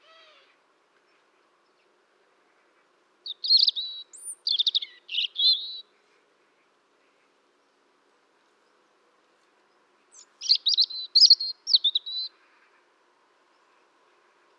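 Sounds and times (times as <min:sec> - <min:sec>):
European robin singing: 0:03.2 - 0:05.9, 0:10.1 - 0:12.4.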